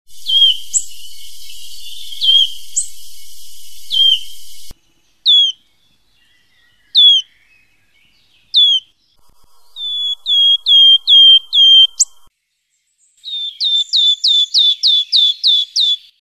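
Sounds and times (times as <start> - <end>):
wood warbler calls: 0.1 - 12.3, 13.2 - 16.2.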